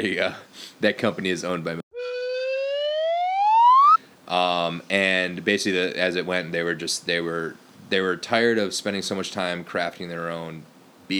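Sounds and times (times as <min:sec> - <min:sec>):
speech: 0:00.0 - 0:01.8, 0:04.3 - 0:11.1
slide whistle sound effect: 0:01.9 - 0:04.0.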